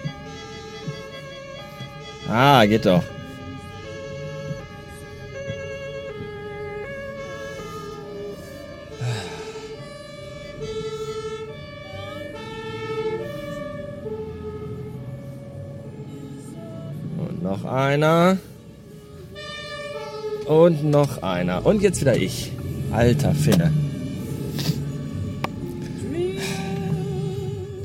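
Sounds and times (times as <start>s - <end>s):
ambulance siren wailing in a two-tone pattern: 0.0s - 27.8s
low rumble of traffic and engines: 0.0s - 27.8s
speech: 2.3s - 3.2s, 17.8s - 18.5s, 20.5s - 23.8s.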